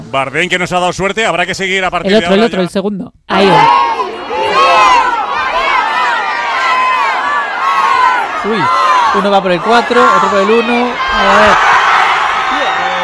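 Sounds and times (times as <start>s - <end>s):
speech: 0.1s - 4.0s, 8.4s - 11.7s
individual yells of football fans: 3.3s - 13.0s
large crowd of football fans cheering and shouting: 3.3s - 13.0s.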